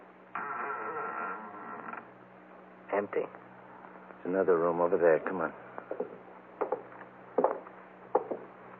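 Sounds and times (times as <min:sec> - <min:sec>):
door at the head of a stair landing creaking open: 0:00.3 - 0:02.1
speech: 0:03.0 - 0:03.4, 0:04.2 - 0:06.1.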